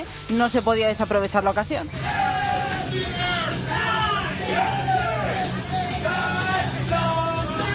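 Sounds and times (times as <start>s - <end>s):
speech: 0.3s - 2.1s, 2.9s - 3.2s
men shout-singing a classic song in a supermarket: 2.0s - 7.7s.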